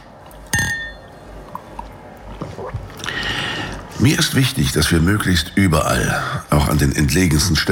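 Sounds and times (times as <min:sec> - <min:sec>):
glasses clinking in a toast: 0:00.4 - 0:01.2
speech: 0:04.0 - 0:07.7.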